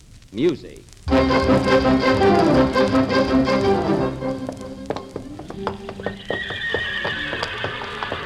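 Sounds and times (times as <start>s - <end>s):
speech: 0.3s - 5.0s
horse hooves clip-clopping: 1.2s - 8.2s
horse whinnying: 6.0s - 8.2s.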